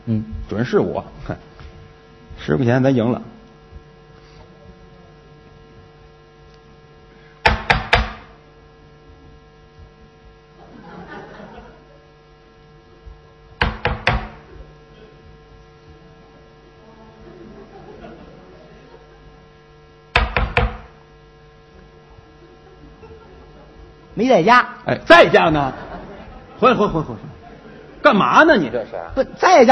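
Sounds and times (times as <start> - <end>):
steady low hum: 0.0 - 29.6
speech: 0.1 - 1.5, 2.4 - 3.3, 24.3 - 25.8, 26.6 - 27.3, 28.0 - 29.6
knocking imitating a door knock: 7.4 - 8.3, 13.6 - 14.5, 20.2 - 21.0
laughter: 10.6 - 12.2, 14.4 - 15.5, 16.1 - 19.6, 22.2 - 24.2, 25.1 - 29.6.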